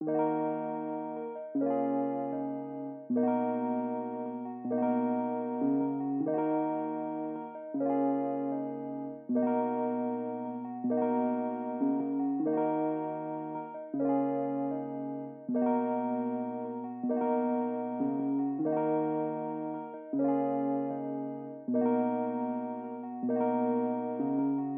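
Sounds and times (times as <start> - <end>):
Rhodes electric piano melody loop in D sharp minor: 0.0 - 24.7.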